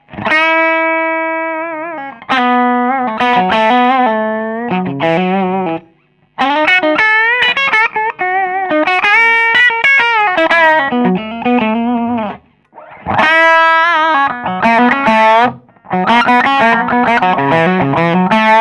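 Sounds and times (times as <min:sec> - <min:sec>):
clean electric guitar with jazz tone: 0:00.0 - 0:18.5.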